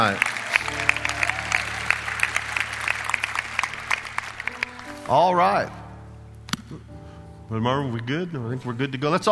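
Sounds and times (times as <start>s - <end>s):
speech: 0.0s - 0.8s, 5.1s - 5.8s, 7.5s - 9.2s
church audience applauding: 0.0s - 5.7s.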